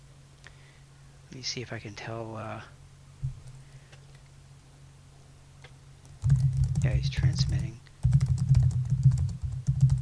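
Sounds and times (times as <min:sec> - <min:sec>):
speech: 0:01.3 - 0:02.8, 0:06.8 - 0:08.2
constant low hum: 0:06.0 - 0:10.0
rapid computer keyboard typing: 0:06.0 - 0:10.0.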